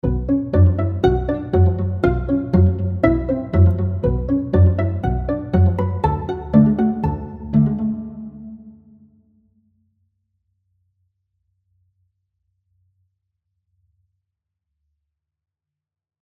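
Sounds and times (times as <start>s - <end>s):
solo pizzicato strings: 0.0s - 9.0s.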